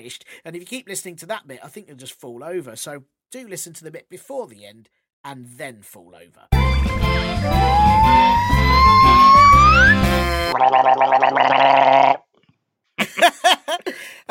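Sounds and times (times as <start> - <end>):
speech: 0.0 - 8.8, 9.8 - 12.2, 13.2 - 14.2
rising tonal sound: 7.1 - 12.0
guttural bursts: 10.0 - 12.2
person gargling: 10.4 - 12.2
laughter: 13.0 - 14.0.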